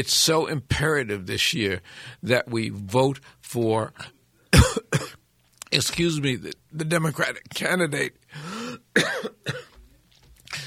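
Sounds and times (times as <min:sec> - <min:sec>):
speech: 0:00.0 - 0:09.6
person coughing and choking: 0:04.5 - 0:05.2, 0:09.0 - 0:09.8.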